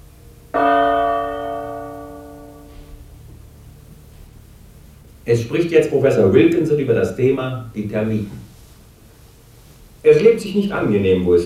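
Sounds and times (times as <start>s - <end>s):
radio time signal gong stroke: 0.5s - 3.2s
speech: 5.3s - 8.4s, 10.1s - 11.4s.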